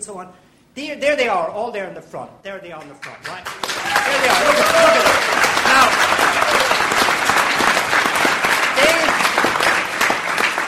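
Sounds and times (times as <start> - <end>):
speech: 0.0 - 5.8
audience applause at a literary festival event: 3.2 - 10.6.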